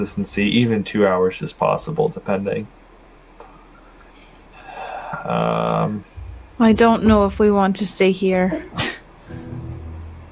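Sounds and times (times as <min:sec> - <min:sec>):
speech: 0:00.0 - 0:02.8, 0:05.2 - 0:09.4
sneeze: 0:08.7 - 0:09.1.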